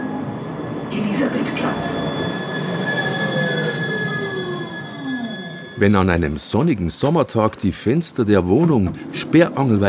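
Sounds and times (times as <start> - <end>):
tram wheels squealing through the Maxvorstadt in Munich: 0.0 - 6.7
tram rumble: 0.0 - 9.8
speech: 5.8 - 9.8.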